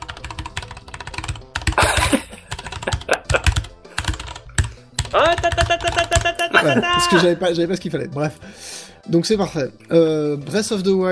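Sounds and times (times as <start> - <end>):
typing on a computer keyboard: 0.0 - 1.8, 2.7 - 6.4
laughter: 1.8 - 4.1, 5.5 - 7.4
speech: 6.6 - 11.1.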